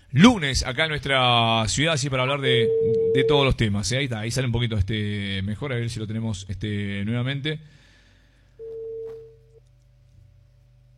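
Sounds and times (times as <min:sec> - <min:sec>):
faint hum: 0:00.0 - 0:10.9
speech: 0:00.1 - 0:07.8
mid-pitched telephone line tone while placing a call: 0:02.6 - 0:03.4, 0:08.6 - 0:09.4.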